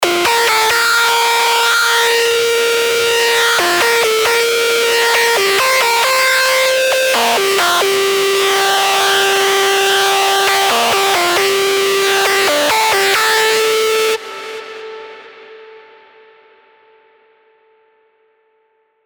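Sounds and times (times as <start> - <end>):
Sylenth1 synthesizer lead: 0.0 - 14.2.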